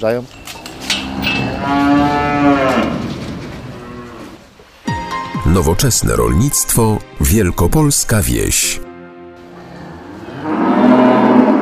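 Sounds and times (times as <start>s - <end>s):
speech: 0.0s - 0.4s, 5.5s - 8.9s
cow mooing on a farm near Pogorzela in Wielkopolska, Poland: 0.6s - 3.1s, 9.6s - 11.5s.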